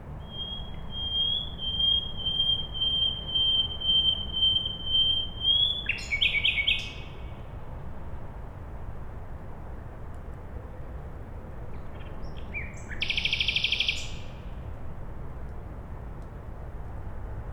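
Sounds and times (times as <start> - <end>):
constant low background hum: 0.0 - 17.5
common nightingale singing at night beside a road in Siemianowice Śląskie Poland: 0.2 - 7.3, 12.2 - 14.4.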